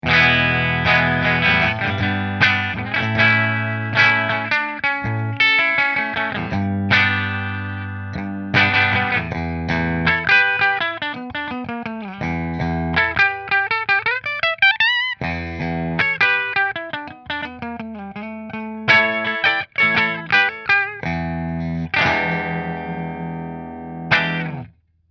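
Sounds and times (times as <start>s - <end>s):
McNaught Custom Guitars Vintage Single Cut guitar: 0.0s - 24.9s.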